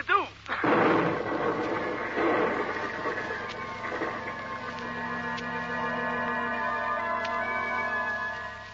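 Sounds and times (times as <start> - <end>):
steady crackling blaze of burning chemicals: 0.0 - 8.7
explosive burst of a crate of chemicals: 0.5 - 4.8
roaring rumble of chemical explosion: 0.5 - 7.4.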